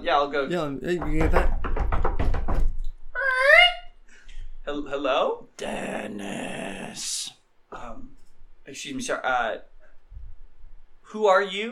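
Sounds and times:
speech: 0:00.0 - 0:01.6, 0:04.9 - 0:07.2, 0:08.7 - 0:09.7, 0:11.1 - 0:11.6
firm knocking on a door: 0:00.8 - 0:02.8.

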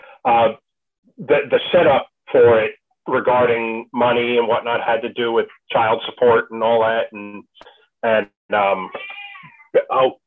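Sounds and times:
speech: 0:00.2 - 0:00.6, 0:01.2 - 0:09.1, 0:09.7 - 0:10.2
cat yowling: 0:08.8 - 0:10.0.

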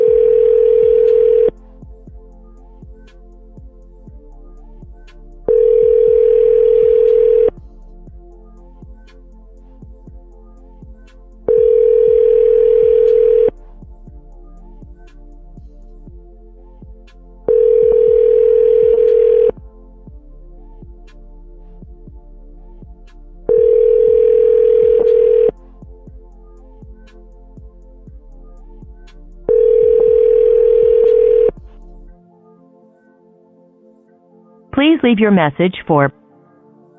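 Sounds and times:
telephone call to a car phone ringing tones: 0:00.0 - 0:01.5, 0:05.5 - 0:07.5, 0:11.5 - 0:13.5, 0:17.5 - 0:19.5, 0:23.5 - 0:25.5, 0:29.5 - 0:31.5
speech: 0:35.0 - 0:36.2.

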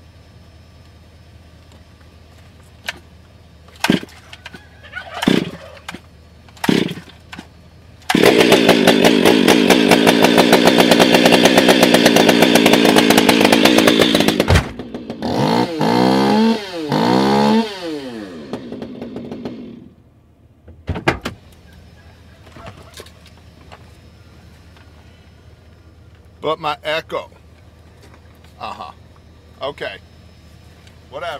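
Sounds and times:
chainsaw starting and revving: 0:03.8 - 0:04.2, 0:05.2 - 0:05.8, 0:06.6 - 0:07.2, 0:08.0 - 0:20.0.

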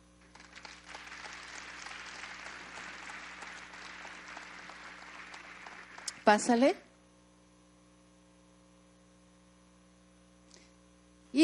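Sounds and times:
audience clapping during a sermon: 0:00.2 - 0:06.7
speech: 0:06.3 - 0:06.8.

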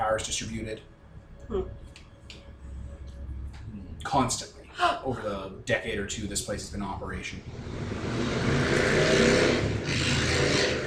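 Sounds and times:
speech: 0:00.1 - 0:00.9, 0:01.5 - 0:02.0, 0:04.0 - 0:10.6
loud unmuffled motorcycle engine revving: 0:07.4 - 0:10.8.

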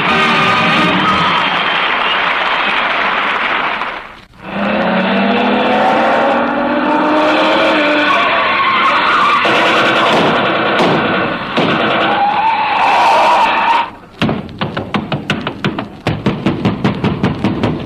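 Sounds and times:
dense sustained noise: 0:00.0 - 0:14.2
someone pounding hard on a door: 0:14.2 - 0:17.8.

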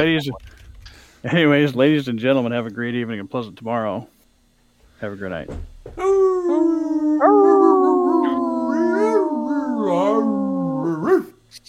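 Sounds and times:
speech: 0:00.0 - 0:00.6, 0:01.2 - 0:04.1, 0:05.0 - 0:06.2
wolf howling: 0:06.0 - 0:11.4.

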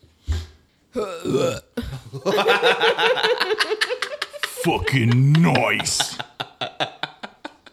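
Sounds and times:
loud guttural belch: 0:01.0 - 0:02.0
speech: 0:01.0 - 0:06.3
hearty laughter from a few people: 0:01.9 - 0:07.7.

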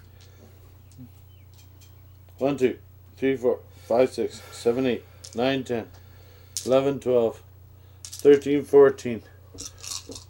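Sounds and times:
speech: 0:02.4 - 0:06.0, 0:06.6 - 0:07.5, 0:08.2 - 0:10.2
dice clattering as they are rolled: 0:08.0 - 0:08.4, 0:09.6 - 0:10.2.

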